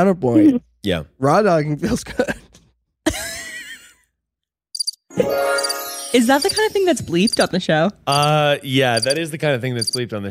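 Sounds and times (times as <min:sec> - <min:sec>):
speech: 0:00.0 - 0:02.4, 0:05.2 - 0:10.2
cricket chirp sound effect: 0:04.8 - 0:05.0, 0:09.0 - 0:09.2, 0:09.8 - 0:10.0.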